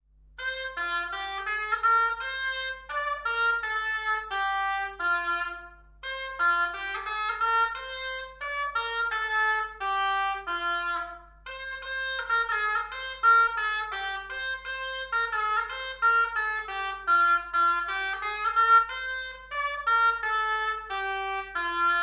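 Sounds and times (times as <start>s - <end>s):
oboe: 0.4s - 22.0s.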